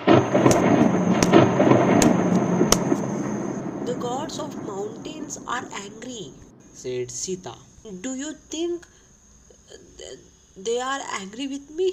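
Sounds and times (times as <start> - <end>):
thunder rumbling: 0.0 - 8.5
thin high whine: 0.0 - 10.8
speech: 4.3 - 9.0, 9.7 - 11.9.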